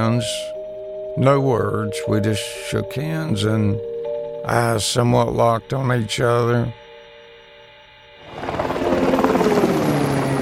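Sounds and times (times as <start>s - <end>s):
speech: 0.0s - 0.6s, 1.2s - 6.8s
helicopter rotor roar with rapid chopping and whining high tone: 8.2s - 10.4s.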